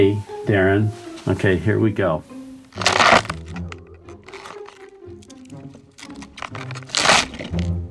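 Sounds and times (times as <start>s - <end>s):
speech: 0.0s - 2.3s
celery stalk twisted and broken as a bone-crushing sound effect: 2.7s - 7.8s.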